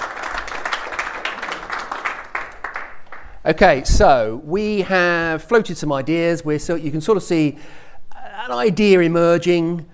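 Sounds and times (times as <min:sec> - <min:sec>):
audience applause: 0:00.0 - 0:03.4
speech: 0:03.4 - 0:07.8, 0:08.4 - 0:09.9.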